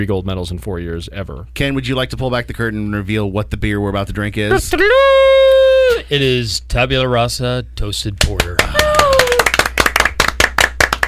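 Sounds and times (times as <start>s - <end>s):
speech: 0.0s - 5.3s, 6.1s - 8.8s
light polite golf-style clapping from a small group at a beer tasting: 8.2s - 11.0s.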